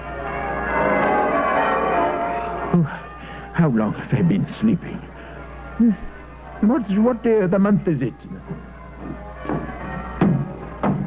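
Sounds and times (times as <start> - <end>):
town church bells pealing: 0.0 - 4.9
speech: 3.6 - 5.1, 5.8 - 8.7.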